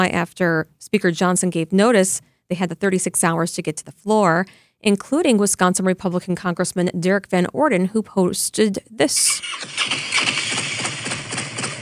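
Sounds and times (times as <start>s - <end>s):
speech: 0.0s - 10.3s
Harley-Davidson motorcycle engine idling: 9.6s - 11.8s.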